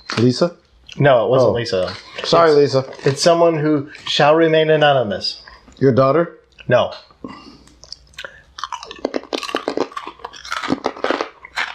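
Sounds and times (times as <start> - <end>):
speech: 0.1 - 7.5
person chewing crisp crunchy food: 1.7 - 4.2, 7.4 - 11.7.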